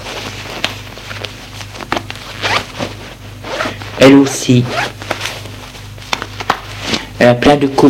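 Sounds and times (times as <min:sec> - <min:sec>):
clothing rustling while getting dressed: 0:00.0 - 0:07.2
low hum: 0:00.0 - 0:07.8
clothing zipper pulls: 0:01.7 - 0:03.8, 0:04.6 - 0:05.2
speech: 0:04.0 - 0:05.0, 0:07.2 - 0:07.8.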